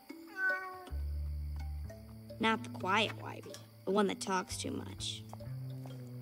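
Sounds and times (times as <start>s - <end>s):
cat meowing: 0.2s - 1.0s
speech: 2.4s - 5.4s.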